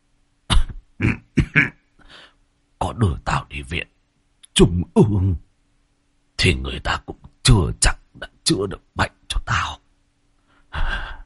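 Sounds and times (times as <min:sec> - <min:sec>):
frail ailing old man coughing painfully: 0:00.5 - 0:01.8
speech: 0:03.0 - 0:03.9, 0:04.6 - 0:05.4, 0:06.4 - 0:09.8.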